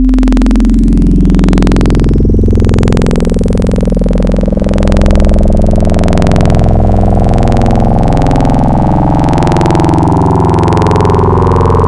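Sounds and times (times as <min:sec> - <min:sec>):
wavetable sine wave pitch bend: 0:00.0 - 0:11.8.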